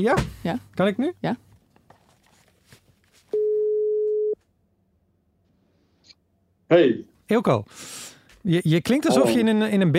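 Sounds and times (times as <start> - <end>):
speech: 0.0 - 1.4, 6.7 - 9.9
telephone ringback tone while placing a call: 3.4 - 4.4.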